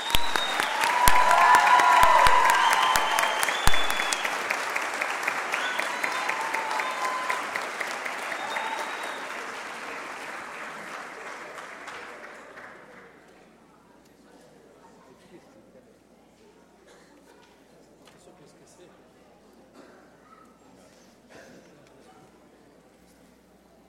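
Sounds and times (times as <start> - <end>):
audience cheers and whistles: 0.0 - 10.2
audience applause: 0.0 - 13.3.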